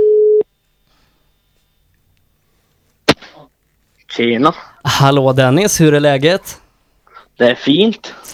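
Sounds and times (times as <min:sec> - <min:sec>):
ringback tone of an outgoing phone call: 0:00.0 - 0:00.4
speech: 0:04.2 - 0:06.6, 0:07.4 - 0:08.3.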